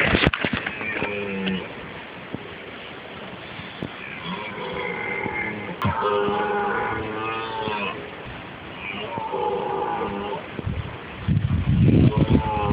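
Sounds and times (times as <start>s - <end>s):
deer roaring: 0.7s - 2.6s, 3.4s - 11.2s, 11.9s - 12.7s.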